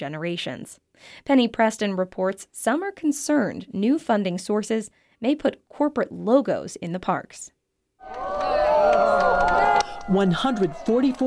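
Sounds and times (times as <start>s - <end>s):
speech: 0.0s - 9.4s, 10.1s - 11.2s
large crowd gasping and cheering at Old Faithful geyser eruption in Yellowstone National Park: 8.0s - 11.2s.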